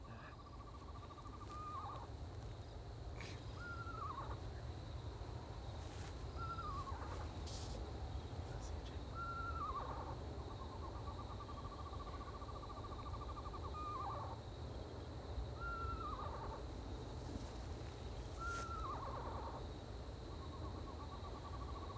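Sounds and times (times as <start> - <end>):
constant low rumble: 0.0 - 21.9
Eastern screech-owl calling in Maryland: 1.2 - 2.1, 3.5 - 4.4, 6.4 - 7.2, 9.2 - 10.2, 11.0 - 14.4, 15.6 - 16.7, 18.3 - 19.6.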